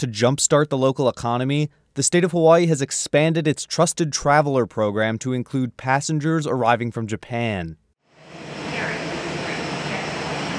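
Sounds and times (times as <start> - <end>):
speech: 0.0 - 7.8
jet engines roaring at an airport: 8.2 - 10.5.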